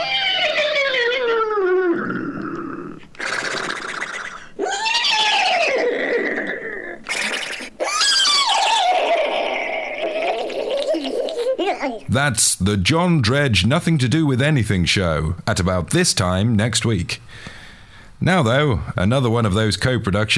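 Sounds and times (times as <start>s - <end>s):
human voice imitating hysterical horse neighing: 0.0s - 10.9s
speech: 12.1s - 17.5s, 18.2s - 20.3s.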